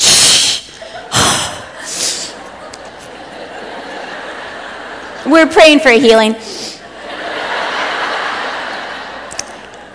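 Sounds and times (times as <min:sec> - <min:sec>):
parent imitating exasperated teenage huff and snort: 0:00.0 - 0:02.4
laughter: 0:00.7 - 0:05.5, 0:06.8 - 0:09.9
speech: 0:05.3 - 0:06.6.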